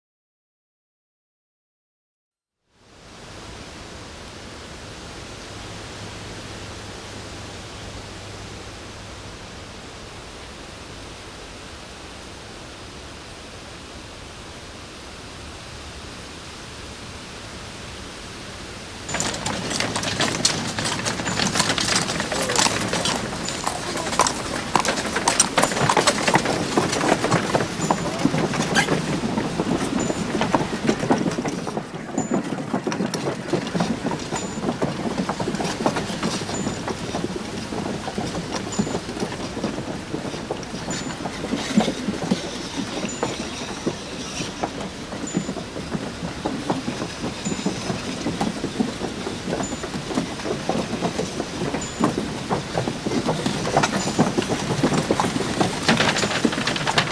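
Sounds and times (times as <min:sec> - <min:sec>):
machine: 0:03.0 - 0:57.0.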